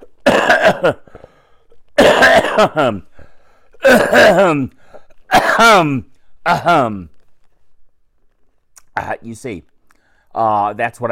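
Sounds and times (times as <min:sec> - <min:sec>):
man coughing hard: 0:00.0 - 0:01.2, 0:02.0 - 0:07.1
speech: 0:00.7 - 0:01.2, 0:02.0 - 0:03.1, 0:03.8 - 0:07.1, 0:09.0 - 0:09.7, 0:10.3 - 0:11.1.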